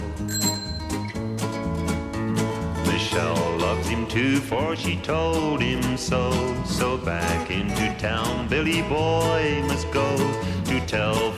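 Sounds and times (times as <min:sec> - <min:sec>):
full musical accompaniment: 0:00.0 - 0:11.3
bicycle bell ringing: 0:00.2 - 0:01.4
speech: 0:04.0 - 0:11.3.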